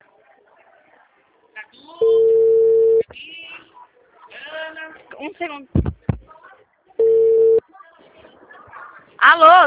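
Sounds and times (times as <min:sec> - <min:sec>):
faint talk: 0:00.0 - 0:09.6
telephone tone after a dropped call: 0:02.0 - 0:03.1, 0:07.0 - 0:07.6
speech: 0:05.2 - 0:05.9, 0:09.2 - 0:09.6.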